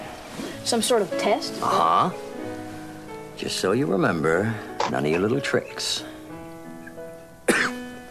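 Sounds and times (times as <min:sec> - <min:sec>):
speech: 0:00.7 - 0:02.3, 0:03.4 - 0:06.1
man coughing after a sip of tea: 0:07.5 - 0:07.8.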